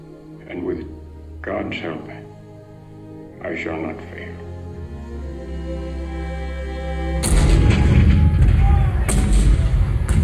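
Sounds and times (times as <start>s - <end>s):
speech: 1.4s - 2.2s, 3.4s - 4.5s
heavy cannon fire: 7.2s - 10.2s.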